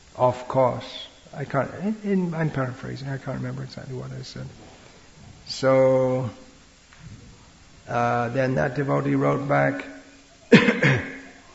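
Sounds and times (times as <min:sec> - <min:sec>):
speech: 0:00.2 - 0:04.7, 0:05.5 - 0:06.4, 0:07.9 - 0:11.0
person coughing: 0:10.5 - 0:11.4.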